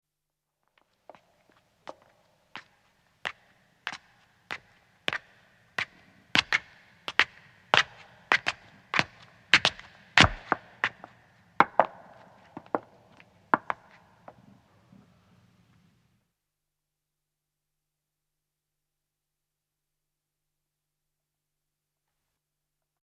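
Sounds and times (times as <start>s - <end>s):
two women approaching and stopping: 0.7s - 15.2s
footsteps ascending on stone: 1.0s - 14.4s.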